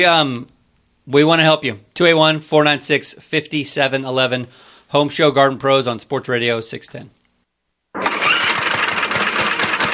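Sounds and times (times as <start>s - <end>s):
speech: 0.0s - 7.2s
small lawn mower engine sputtering and chugging: 8.0s - 9.9s.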